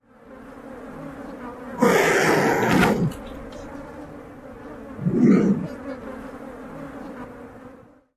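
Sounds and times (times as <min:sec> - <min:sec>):
Turkey Vulture hissing grunts: 0:01.7 - 0:03.3, 0:04.8 - 0:06.0.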